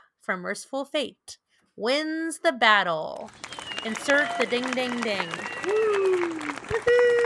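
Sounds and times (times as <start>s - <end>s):
speech: 0.2s - 7.2s
light scattered hand claps: 3.3s - 7.2s
long sustained vocal whoop sliding downward in pitch: 5.6s - 7.2s.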